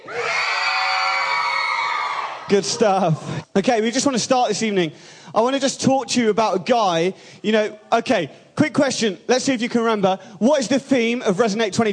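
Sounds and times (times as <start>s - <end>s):
audience screaming and cheering: 0.0s - 3.4s
speech: 2.5s - 11.9s.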